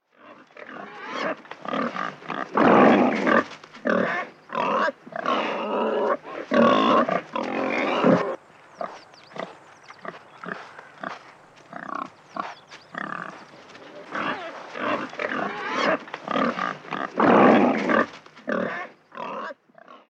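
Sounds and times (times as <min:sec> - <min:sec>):
wild boar Sus scrofa: 0:00.1 - 0:20.0.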